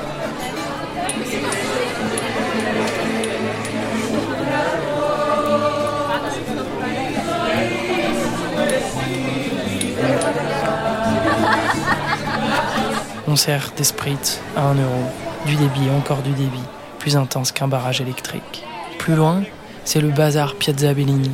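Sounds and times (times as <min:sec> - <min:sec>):
packed crowd chattering around bars at night in Naples: 0:00.0 - 0:21.3
bursts of laughter: 0:10.9 - 0:13.3
speech: 0:13.4 - 0:21.3.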